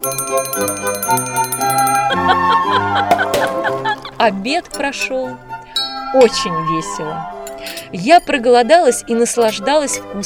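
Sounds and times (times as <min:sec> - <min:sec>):
speech: 0:00.0 - 0:01.3, 0:04.2 - 0:05.5, 0:06.1 - 0:10.2
small golden handbell ringing: 0:00.0 - 0:02.4
laughter: 0:02.0 - 0:04.3.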